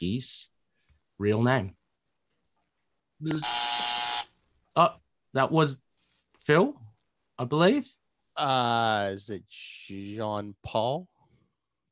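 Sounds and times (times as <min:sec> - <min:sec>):
speech: 0:00.0 - 0:00.5, 0:01.2 - 0:01.8, 0:03.2 - 0:03.6, 0:04.8 - 0:05.8, 0:06.4 - 0:11.1
quiz buzzer electronic buzz: 0:03.3 - 0:04.4.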